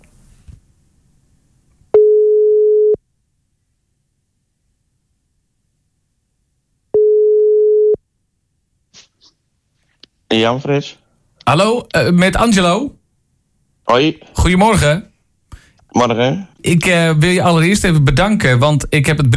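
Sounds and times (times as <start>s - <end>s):
telephone line tones while a call is placed: 2.0s - 3.0s, 7.0s - 8.0s
speech: 10.3s - 13.0s, 13.9s - 15.1s, 15.9s - 19.3s.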